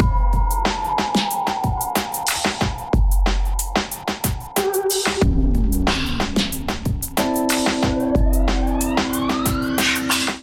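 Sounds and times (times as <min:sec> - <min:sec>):
melodic drum kit loop: 0:00.0 - 0:10.4.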